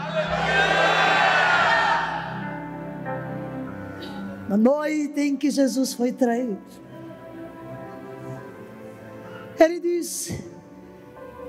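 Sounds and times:
congregation shouting hallelujah: 0:00.0 - 0:02.6
speech: 0:04.5 - 0:06.9, 0:09.6 - 0:10.5.

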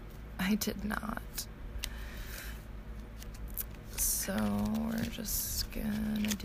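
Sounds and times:
low steady hum: 0:00.0 - 0:06.4
speech: 0:00.5 - 0:01.6, 0:04.2 - 0:06.4
tarot card deck being shuffled for a reading: 0:02.9 - 0:06.4.

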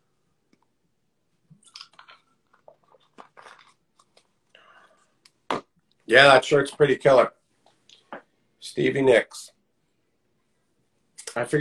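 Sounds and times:
person sipping and swallowing flavored water: 0:01.5 - 0:04.3
speech: 0:06.1 - 0:07.4, 0:08.8 - 0:09.5, 0:11.4 - 0:11.6.

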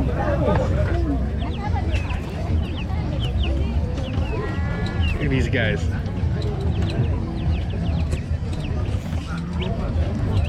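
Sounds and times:
small flock of chickens clucking and chirping: 0:00.0 - 0:10.4
steady busy murmur: 0:00.0 - 0:10.4
speech: 0:05.3 - 0:06.0.

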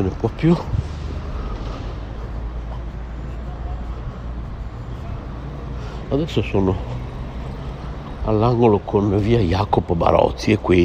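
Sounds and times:
speech: 0:00.0 - 0:00.8, 0:06.1 - 0:07.0, 0:08.2 - 0:10.8
road traffic at a pedestrian crossing on a busy boulevard in Bologna: 0:00.0 - 0:10.8
tyres hissing on a busy boulevard in Bologna: 0:00.1 - 0:08.1.

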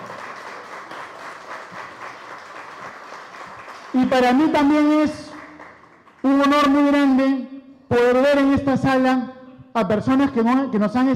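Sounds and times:
audience applause: 0:00.0 - 0:04.1
speech: 0:03.9 - 0:05.2, 0:06.4 - 0:11.1.

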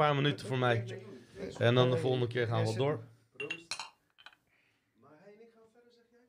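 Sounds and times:
speech: 0:00.0 - 0:03.1
glasses clinking in a toast: 0:03.4 - 0:04.4.

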